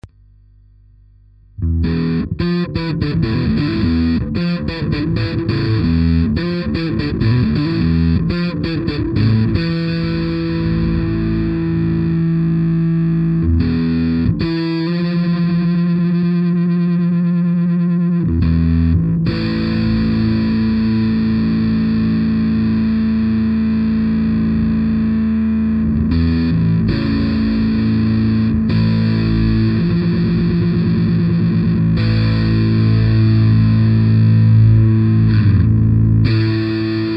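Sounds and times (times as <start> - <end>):
distorted bass slap: 0.0 - 37.1.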